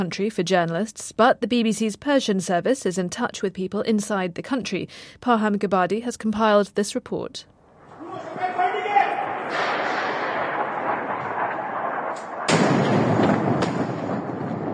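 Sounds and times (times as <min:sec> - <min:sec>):
speech: 0:00.0 - 0:07.5
rumbling and rolling noise: 0:07.6 - 0:14.7
heavy booming blast from an airstrike: 0:07.8 - 0:14.7.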